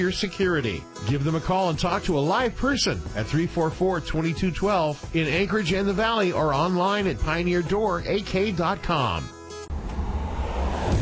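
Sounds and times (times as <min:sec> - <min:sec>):
speech: 0:00.0 - 0:09.4
cars driving along a pothole-damaged road in Alaska: 0:09.7 - 0:11.0.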